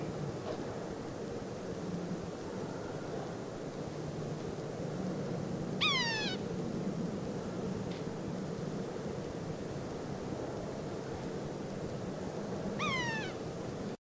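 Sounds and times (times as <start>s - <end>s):
low rumble of background noise: 0.0s - 13.9s
Yellow-bellied sapsucker making nasal downslurred mewing calls: 5.8s - 6.5s, 12.8s - 13.5s.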